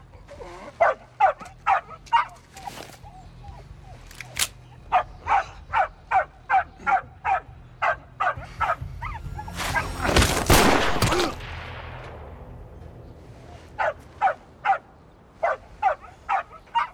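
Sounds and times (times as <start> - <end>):
dog barking: 0.0 - 16.9
loud rushing burst of noise: 8.4 - 14.2.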